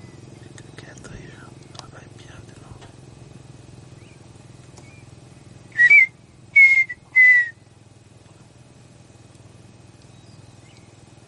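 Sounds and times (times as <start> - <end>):
faint low hum: 0.0 - 11.2
partridge whistled song: 3.9 - 4.2, 4.8 - 5.1, 5.7 - 7.6, 10.0 - 11.0.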